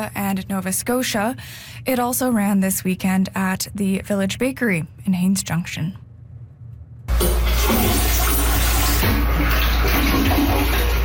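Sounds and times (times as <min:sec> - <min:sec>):
speech: 0:00.0 - 0:06.0
toilet flushing in a public restroom: 0:07.1 - 0:11.0.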